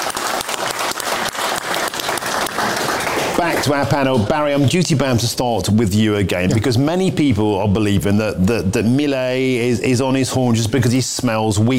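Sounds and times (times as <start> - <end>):
crowd applauding: 0.0 - 4.2
speech: 3.4 - 11.7.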